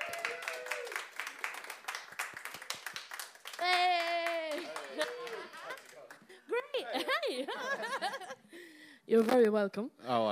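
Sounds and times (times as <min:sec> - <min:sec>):
cheer or whoop from a crowd: 0:00.0 - 0:01.0, 0:03.6 - 0:05.7
crowd applauding with steady dense clapping: 0:00.0 - 0:06.4
laughter: 0:04.5 - 0:08.4
speech: 0:09.1 - 0:10.3.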